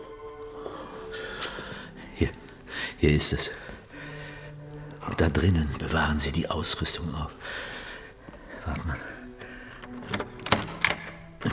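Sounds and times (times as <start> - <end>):
speech: 2.2 - 2.4, 3.0 - 3.7, 5.0 - 7.8, 8.7 - 9.1
door handle jiggled against a locked door: 9.8 - 11.5.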